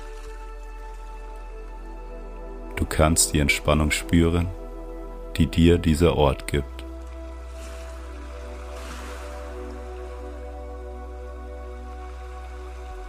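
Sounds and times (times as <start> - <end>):
speech: 2.8 - 4.6, 5.4 - 6.7
soft ocean surf rushing: 7.4 - 10.6.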